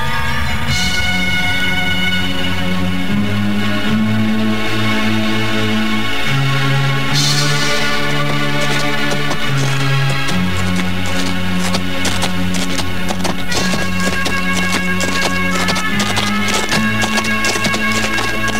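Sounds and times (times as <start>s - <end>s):
sustained tonal music: 0.0s - 18.5s
hooves of cavalry horses clattering: 7.2s - 18.5s.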